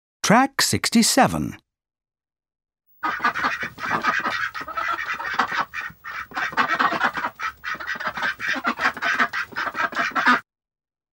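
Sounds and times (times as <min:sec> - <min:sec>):
speech: 0:00.3 - 0:01.6
duck quacking: 0:03.0 - 0:10.4.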